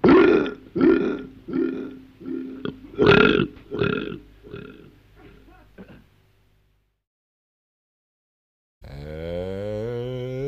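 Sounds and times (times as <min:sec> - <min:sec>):
loud burps: 0:00.0 - 0:06.1, 0:08.8 - 0:10.3.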